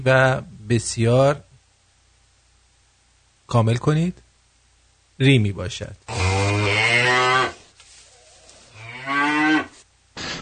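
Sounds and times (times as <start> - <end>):
speech: 0.0 - 1.5, 3.5 - 4.2, 5.2 - 6.2
dairy cows mooing: 6.1 - 9.8.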